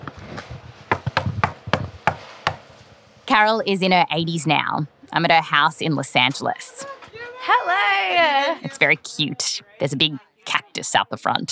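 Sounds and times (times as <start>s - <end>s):
sharp knocks on a wooden front door: 0.9s - 2.6s
speech: 3.4s - 11.5s.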